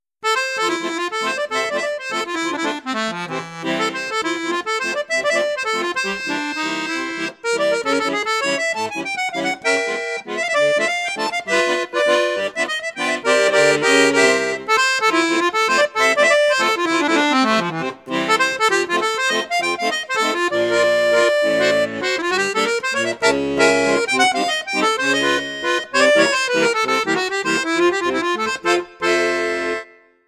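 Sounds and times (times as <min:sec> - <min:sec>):
Maugein Octavia accordion flute register: 0:00.2 - 0:30.2.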